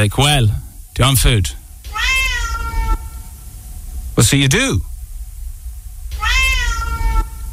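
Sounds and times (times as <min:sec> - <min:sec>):
speech: 0:00.0 - 0:02.1, 0:04.2 - 0:04.9
faint low hum: 0:00.0 - 0:07.5
domestic cat meowing: 0:01.9 - 0:03.3, 0:06.1 - 0:07.5.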